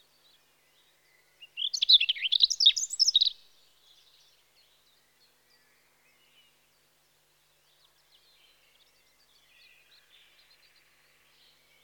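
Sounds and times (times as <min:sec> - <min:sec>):
European robin Erithacus rubecula singing in spring: 0:01.4 - 0:03.4.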